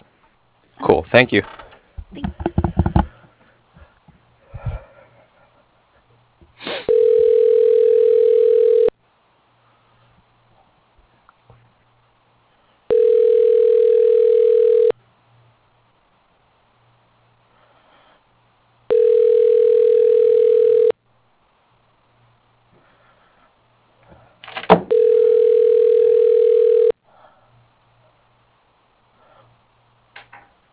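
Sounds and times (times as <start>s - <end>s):
speech: 0.9s - 2.4s
telephone line tone while a call is transferred: 6.9s - 9.0s, 12.9s - 15.0s, 18.9s - 21.0s, 24.9s - 27.0s.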